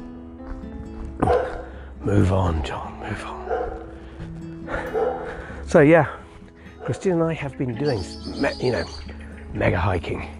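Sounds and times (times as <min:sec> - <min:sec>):
single sharp dog bark: 0:01.2 - 0:04.0, 0:04.7 - 0:05.5, 0:06.8 - 0:07.1
speech: 0:02.0 - 0:03.5, 0:05.7 - 0:06.2, 0:06.9 - 0:10.3.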